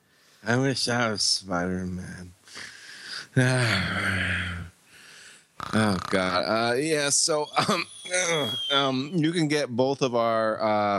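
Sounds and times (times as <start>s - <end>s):
speech: 0.4s - 2.7s, 3.3s - 4.7s, 5.6s - 10.9s
person snoring against a microphone: 3.4s - 4.7s, 5.6s - 6.6s.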